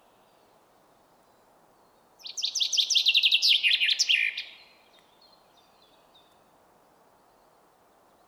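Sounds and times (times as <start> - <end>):
Common chaffinch Fringilla coelebs song fragment of sharp chirping notes: 2.2 - 6.4.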